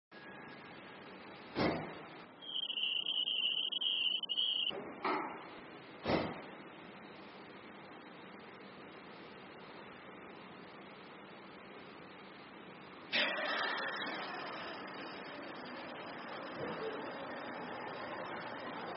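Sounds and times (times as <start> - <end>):
car park ambience: 0.2 - 6.8, 13.1 - 18.9.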